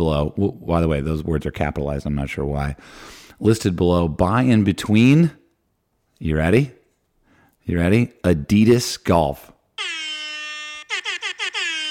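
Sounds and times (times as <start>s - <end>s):
speech: 0.0s - 5.4s, 6.2s - 6.8s, 7.7s - 10.0s
brassy air horn blasts: 9.8s - 11.8s.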